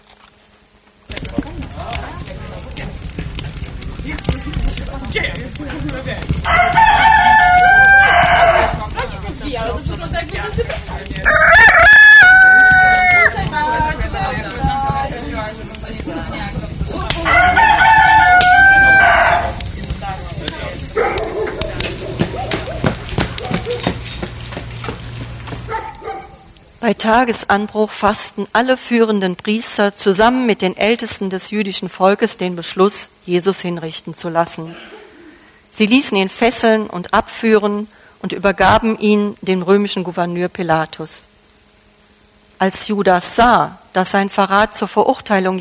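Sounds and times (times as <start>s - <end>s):
speech: 5.1s - 7.1s, 26.8s - 35.0s, 35.8s - 41.3s, 42.6s - 45.5s
quiet farmyard background: 5.6s - 16.4s, 17.0s - 29.4s
rooster crowing: 6.3s - 9.1s, 11.1s - 13.8s, 17.0s - 19.6s, 20.9s - 24.0s, 24.8s - 27.8s.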